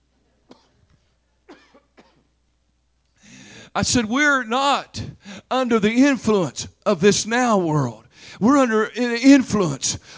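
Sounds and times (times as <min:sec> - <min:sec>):
man coughing in rough bursts: 0:01.5 - 0:02.3
speech: 0:03.8 - 0:10.1.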